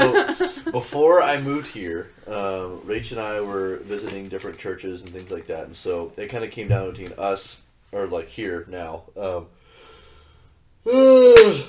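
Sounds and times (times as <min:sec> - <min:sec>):
speech: 0:00.7 - 0:09.6, 0:10.8 - 0:11.6
person yawning: 0:10.8 - 0:11.6.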